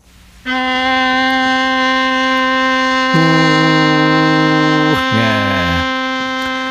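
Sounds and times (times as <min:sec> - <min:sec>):
long deep ship's horn blast: 0:00.5 - 0:06.4
speech: 0:03.1 - 0:03.4.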